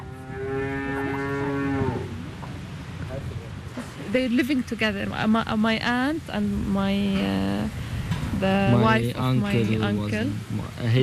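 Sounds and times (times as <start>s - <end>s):
cow mooing on a dairy farm: 0.0s - 2.2s
farmyard noise: 0.0s - 2.6s
speech: 4.1s - 7.8s, 8.4s - 11.0s.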